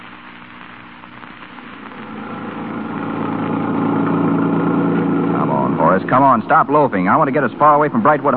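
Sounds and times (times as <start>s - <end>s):
car engine idling: 2.0s - 8.3s
speech: 6.1s - 8.3s.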